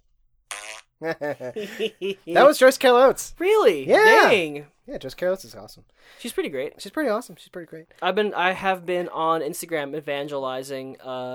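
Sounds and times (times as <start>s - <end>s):
buzzy fart sound effect: 0.5s - 0.9s
laughter: 1.0s - 2.6s
speech: 1.0s - 11.3s.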